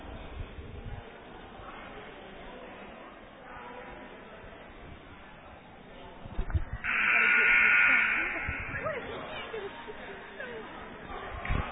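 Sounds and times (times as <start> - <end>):
chatter and murmur of a busy gym crowd: 0.0 - 11.7
basketball game electronic buzzer in a gym: 6.8 - 9.5.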